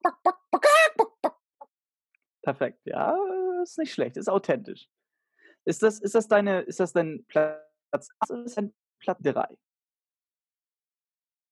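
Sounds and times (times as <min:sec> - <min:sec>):
person imitating a clucking chicken: 0:00.0 - 0:01.3
speech: 0:02.5 - 0:05.0, 0:05.6 - 0:09.6.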